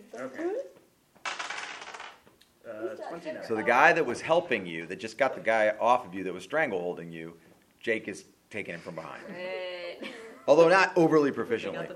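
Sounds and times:
speech: 0.2 - 0.7, 3.1 - 11.9
percentile dice rolled during a tabletop game: 1.2 - 2.3.

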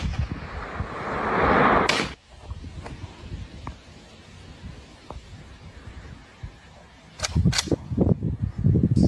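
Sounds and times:
steady rumbling noise: 0.0 - 9.0
AR rifle gunshots fired at a drone: 1.8 - 2.2.

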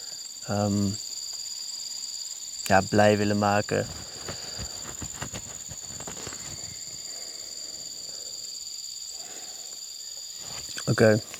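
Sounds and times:
steady high-pitched insect chirr: 0.0 - 11.3
speech: 0.5 - 1.1, 2.7 - 4.4, 10.9 - 11.3
fly buzzing: 3.2 - 9.5.

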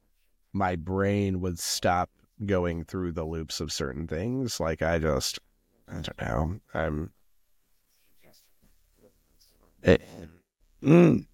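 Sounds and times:
speech: 0.5 - 7.2, 9.8 - 11.3
person clearing throat: 9.8 - 11.3.

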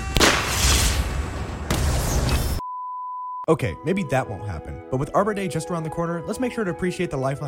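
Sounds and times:
loud cannon blasts: 0.1 - 2.3
speech: 3.5 - 7.4.

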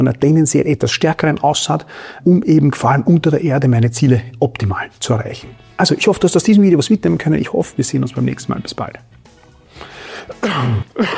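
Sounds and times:
speech: 0.0 - 9.2, 9.8 - 11.1
person coughing roughly: 10.3 - 11.1.

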